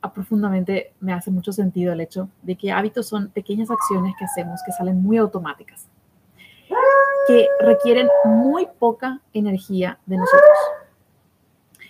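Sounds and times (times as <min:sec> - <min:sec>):
speech: 0:00.2 - 0:05.9, 0:06.7 - 0:10.8
dog whining and howling: 0:03.7 - 0:05.2, 0:06.7 - 0:08.7, 0:10.2 - 0:10.9.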